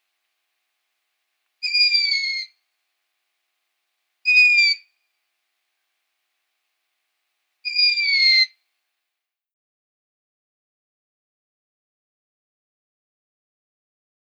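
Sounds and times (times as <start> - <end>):
long-eared owl squeaky descending call: 1.6 - 2.5, 4.3 - 4.8, 7.7 - 8.5.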